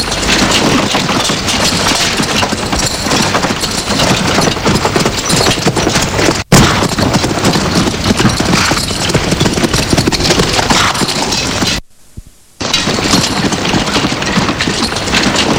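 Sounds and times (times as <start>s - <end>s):
horse hooves clip-clopping: 0.0s - 11.8s, 12.6s - 15.5s.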